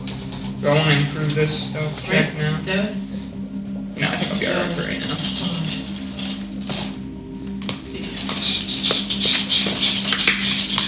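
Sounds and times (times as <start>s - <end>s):
steady low hum: 0.0s - 10.8s
speech: 0.6s - 3.3s
dice rattling and clattering across a hard tabletop: 4.2s - 7.0s, 8.0s - 10.8s.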